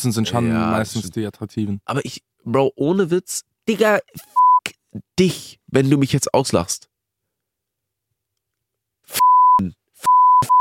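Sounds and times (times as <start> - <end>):
speech: 0.0 - 6.9, 9.1 - 9.8
censorship bleeps: 4.2 - 4.7, 9.1 - 10.5.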